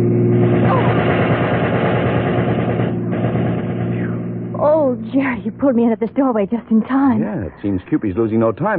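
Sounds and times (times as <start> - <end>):
roar of a passing car's engine: 0.0 - 5.3
machine-gun fire from a passing car: 0.4 - 4.4
speech: 5.4 - 8.7.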